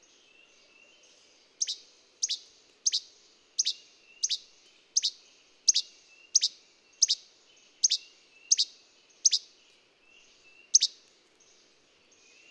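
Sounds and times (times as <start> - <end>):
bird song of thin high downslurred double-note chirps: 0.3 - 9.5, 10.2 - 11.0.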